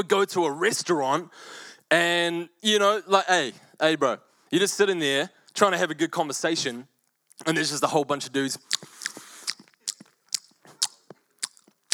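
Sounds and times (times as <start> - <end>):
speech: 0.0 - 8.9
person vocally imitating loud open-mouth chewing: 7.3 - 7.9, 8.5 - 11.9.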